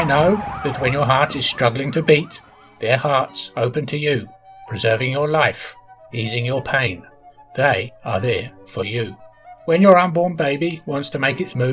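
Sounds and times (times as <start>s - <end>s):
ambulance siren wailing: 0.0s - 11.7s
speech: 0.0s - 11.7s.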